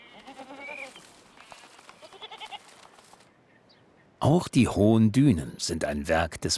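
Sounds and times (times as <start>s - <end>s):
goats bleating in wavering nasal calls: 0.0s - 1.1s, 2.0s - 2.8s
soft outdoor background: 0.0s - 6.5s
speech: 4.2s - 6.5s.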